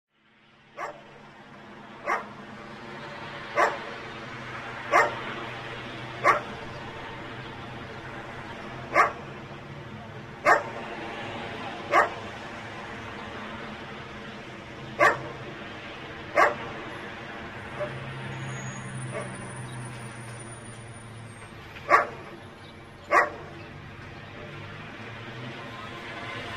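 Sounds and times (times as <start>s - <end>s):
dog in the streets: 0.8s - 1.0s, 2.0s - 2.3s, 3.6s - 3.9s, 4.9s - 5.2s, 6.2s - 6.5s, 8.9s - 9.2s, 10.4s - 10.8s, 11.9s - 12.2s, 15.0s - 15.3s, 16.4s - 16.6s, 21.9s - 22.2s, 23.1s - 23.4s.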